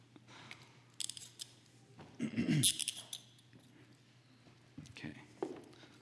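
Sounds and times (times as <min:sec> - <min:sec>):
metal handcuffs clicked and ratcheted shut: 0:00.9 - 0:01.7, 0:02.6 - 0:03.4
speech: 0:02.2 - 0:03.0.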